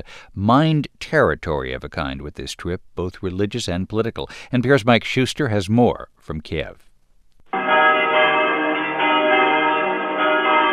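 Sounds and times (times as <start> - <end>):
speech: 0.0 - 6.9
cathedral church bells ringing: 7.6 - 10.7.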